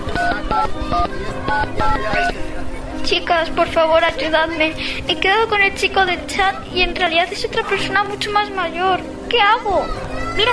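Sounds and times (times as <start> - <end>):
dense continuous sound: 0.0 - 10.5
touch-tone beeps from dialing a telephone: 0.1 - 2.3
speech: 0.6 - 2.4, 3.0 - 10.5.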